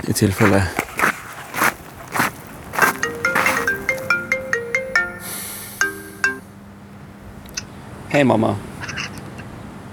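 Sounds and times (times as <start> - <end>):
speech: 0.1 - 0.8, 8.2 - 8.7
chimes: 2.8 - 6.5
mobile phone ringtone with bright electronic notes: 2.8 - 6.5.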